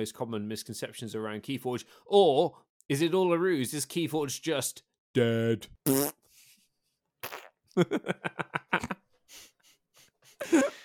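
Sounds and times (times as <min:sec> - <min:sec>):
speech: 0:00.0 - 0:06.2, 0:07.2 - 0:09.5, 0:10.4 - 0:10.8
wet sputtering mouth-made raspberry fart noises: 0:05.8 - 0:06.2, 0:07.2 - 0:07.6
laughter: 0:07.8 - 0:09.0.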